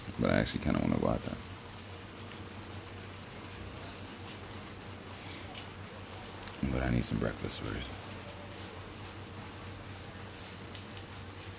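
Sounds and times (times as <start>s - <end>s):
heavy rain falling outside: 0.0s - 11.5s
speech: 0.2s - 1.5s, 6.6s - 8.0s.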